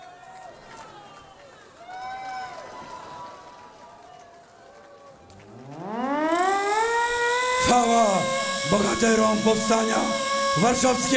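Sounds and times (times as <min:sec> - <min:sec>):
civil defense siren being set off at a Warsaw Uprising commemoration: 0:05.4 - 0:11.1
speech: 0:07.7 - 0:11.1.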